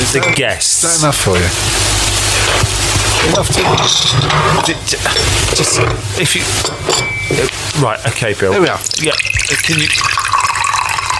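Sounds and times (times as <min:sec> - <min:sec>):
speech: 0:00.1 - 0:10.4
water pouring from a kettle for a tea ceremony: 0:08.7 - 0:11.1.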